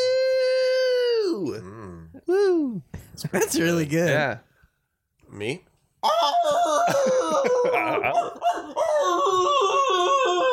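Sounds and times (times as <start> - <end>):
person imitating a wolf howl in a howling contest: 0.0 - 2.8, 6.0 - 10.5
speech: 2.2 - 4.5, 5.3 - 9.5
laughter: 6.7 - 9.4.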